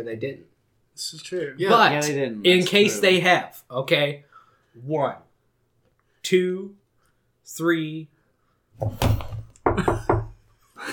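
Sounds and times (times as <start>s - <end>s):
speech: 0.0s - 5.2s, 6.2s - 6.8s, 7.4s - 8.1s, 8.8s - 9.2s
heavy thudding knocks on a door: 8.8s - 10.4s.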